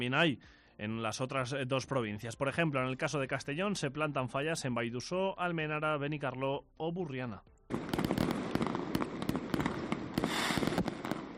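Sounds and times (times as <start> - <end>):
speech: 0.0 - 8.0
long string of firecrackers popping rapidly: 7.7 - 11.3.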